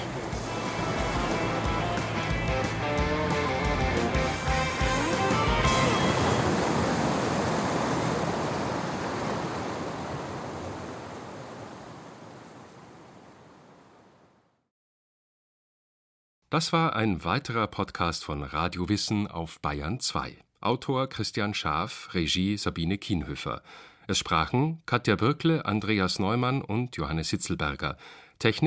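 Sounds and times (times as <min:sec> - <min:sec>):
music: 0:00.0 - 0:06.4
ocean surf breaking on the shore: 0:00.0 - 0:14.4
speech: 0:16.5 - 0:28.6.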